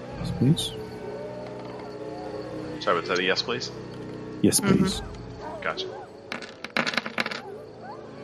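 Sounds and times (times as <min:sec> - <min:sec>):
speech: 0:00.2 - 0:00.8, 0:02.8 - 0:06.0
many dice rolled together during a tabletop game: 0:06.3 - 0:07.5.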